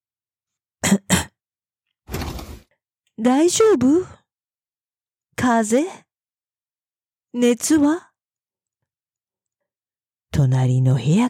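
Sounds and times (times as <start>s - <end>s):
person coughing after choking on powder: 0.8s - 1.4s
speech: 3.2s - 4.2s, 5.4s - 6.1s, 7.3s - 8.1s, 10.4s - 11.2s.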